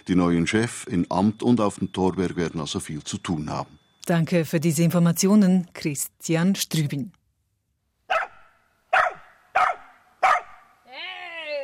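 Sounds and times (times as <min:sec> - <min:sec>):
speech: 0:00.0 - 0:07.2
rescue dog barking during search training: 0:08.1 - 0:10.7.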